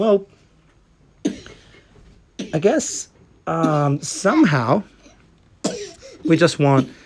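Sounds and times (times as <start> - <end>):
speech: 0.0 - 0.4, 2.5 - 4.9, 6.2 - 7.0
child coughing: 1.2 - 1.8, 2.4 - 2.8, 3.6 - 4.4, 5.0 - 7.0.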